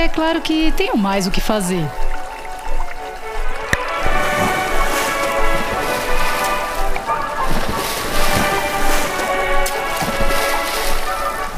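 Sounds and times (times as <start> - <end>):
speech: 0.0 - 2.2
faint tonal music: 0.0 - 11.5
fountain water jets splashing: 0.0 - 11.5.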